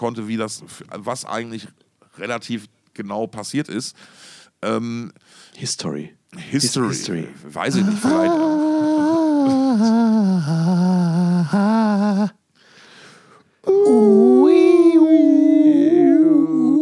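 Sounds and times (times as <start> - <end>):
speech: 0.0 - 10.8, 11.5 - 12.4
several dogs howling in a frenzied chorus: 13.8 - 16.7.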